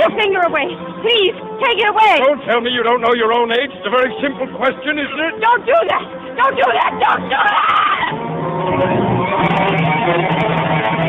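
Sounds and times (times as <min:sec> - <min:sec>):
speech: 0:00.2 - 0:08.1, 0:08.7 - 0:11.0
woman screaming in panic: 0:05.8 - 0:08.2.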